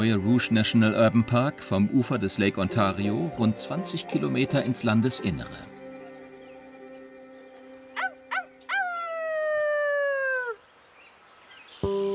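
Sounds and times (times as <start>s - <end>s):
speech: 0.0s - 5.7s
howling call to lure coyotes: 7.8s - 10.6s.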